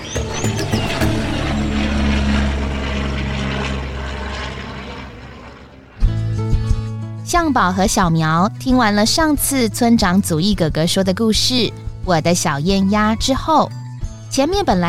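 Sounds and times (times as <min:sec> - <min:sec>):
bright tonal burst of sound: 0:00.0 - 0:05.2
propeller airplane engine droning: 0:00.0 - 0:12.6
speech: 0:07.3 - 0:14.8.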